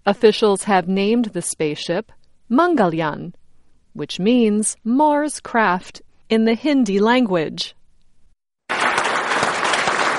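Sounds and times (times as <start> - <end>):
speech: 0.1 - 3.4, 4.0 - 7.8
scientists applauding in space agency command center as Mars craft enters orbit: 8.7 - 10.1.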